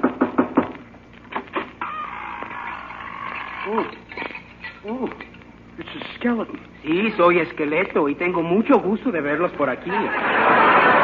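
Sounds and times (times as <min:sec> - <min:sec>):
knocking on a door: 0:00.0 - 0:00.7
wavering creaky tone: 0:01.3 - 0:05.8
speech: 0:03.7 - 0:11.0
laughter: 0:09.9 - 0:11.0.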